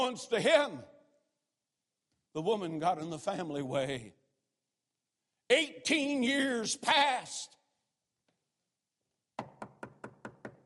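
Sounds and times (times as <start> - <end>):
speech: 0.0 - 0.9, 2.3 - 4.2, 5.5 - 7.6
sharp knocks on a door: 9.4 - 10.6.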